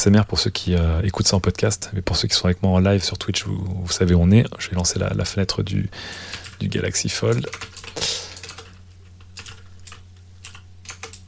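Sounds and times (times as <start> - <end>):
speech: 0.0 - 7.8
low steady hum: 0.0 - 11.2
typing on a computer keyboard: 6.1 - 6.6, 7.3 - 11.2.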